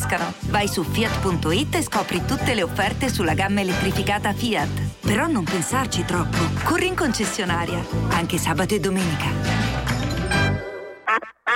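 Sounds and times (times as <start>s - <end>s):
speech: 0.1s - 9.9s
duck-shaped novelty sugar bowl quacking: 11.1s - 11.5s.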